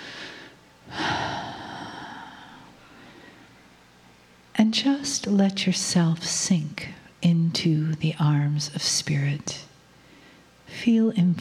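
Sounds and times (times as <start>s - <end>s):
deep breath: 0.0s - 3.6s, 10.0s - 10.6s
speech: 4.7s - 9.7s, 10.8s - 11.3s.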